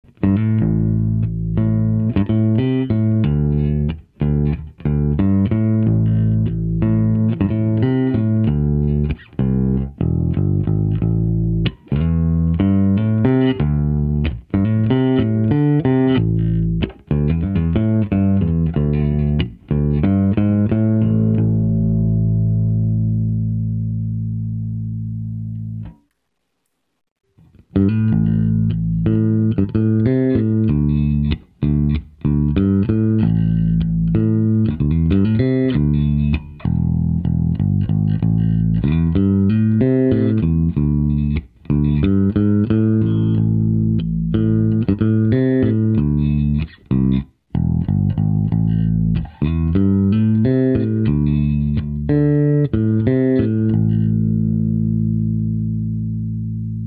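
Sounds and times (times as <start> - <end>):
jazz bass guitar through bass amplifier with EQ: 0.0 - 26.2, 27.2 - 56.8.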